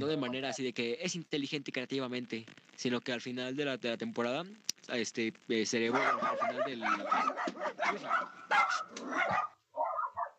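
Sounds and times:
speech: 0.0 - 9.5
several dogs barking and yapping in a scuffle: 5.9 - 10.3.

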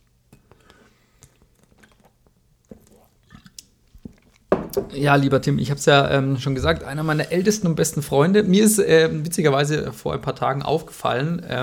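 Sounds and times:
sips and swallows of Kölsch beer after a toast: 0.3 - 4.5
soft wet mouth clicks: 0.3 - 4.5
speech: 4.8 - 11.6.

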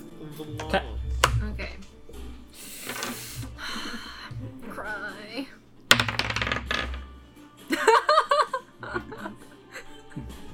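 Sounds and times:
speech: 0.2 - 1.8
dice tumbling across a hard tabletop: 2.6 - 3.4, 5.9 - 7.2
laughter: 7.7 - 10.3.

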